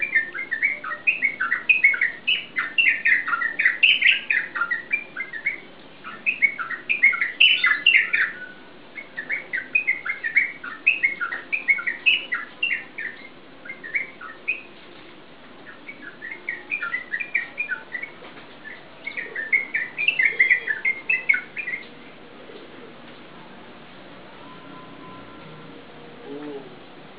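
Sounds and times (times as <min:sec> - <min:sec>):
Yellow-vented bulbul chattering in bubbly notes: 0:00.0 - 0:14.7, 0:15.6 - 0:21.9.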